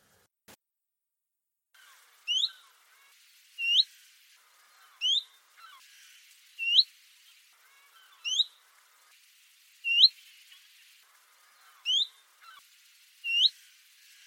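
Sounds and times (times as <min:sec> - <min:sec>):
chiffchaff and willow warbler calls: 0:01.8 - 0:08.9, 0:09.8 - 0:12.6, 0:13.2 - 0:14.2.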